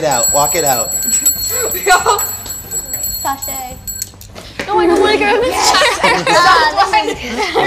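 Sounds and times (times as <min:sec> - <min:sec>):
speech: 0:00.0 - 0:02.4, 0:03.2 - 0:03.9, 0:04.7 - 0:07.6
small bell rung as a signal to start walking: 0:00.0 - 0:04.4
laughter: 0:05.5 - 0:07.6.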